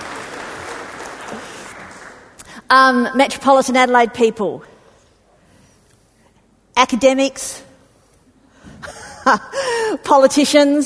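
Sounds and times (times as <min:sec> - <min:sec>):
audience applauding farmers at a gathering: 0:00.0 - 0:02.4
speech: 0:02.7 - 0:04.7, 0:06.9 - 0:07.6, 0:09.2 - 0:10.8.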